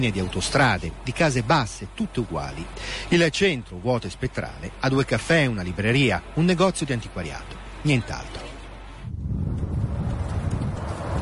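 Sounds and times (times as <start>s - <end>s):
speech: 0.0s - 8.5s
strong wind blowing: 8.8s - 11.2s.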